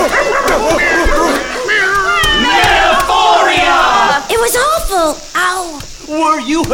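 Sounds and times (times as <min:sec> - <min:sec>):
overlapping cat meows: 0:00.0 - 0:04.5
brief sharp yelps: 0:00.0 - 0:05.7
speech: 0:05.0 - 0:06.7.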